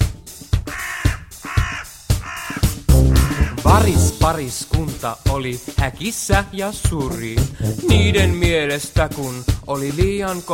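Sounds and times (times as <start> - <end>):
Hooded crow giving harsh hoarse caws: 0.7 - 3.6
speech: 3.9 - 10.5.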